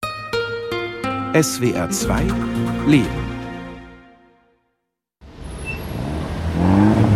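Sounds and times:
speech: 0:01.3 - 0:03.3
car engine revving: 0:05.2 - 0:07.1.

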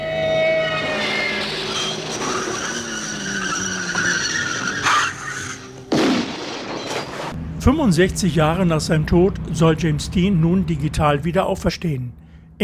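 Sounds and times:
car tires squealing in a skid: 0:00.0 - 0:05.9
car crash: 0:00.3 - 0:07.4
speech: 0:07.6 - 0:12.6.

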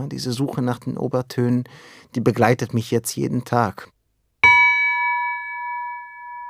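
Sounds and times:
speech: 0:00.0 - 0:03.9
small bell at most 30 cm tall struck once: 0:04.4 - 0:06.4.

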